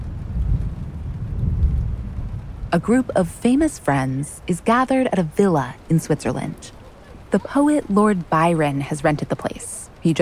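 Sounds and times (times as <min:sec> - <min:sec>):
deep rolling thunder rumble above a lake: 0:00.0 - 0:10.2
steady rainstorm hissing above a lake: 0:00.0 - 0:10.2
speech: 0:02.7 - 0:10.2.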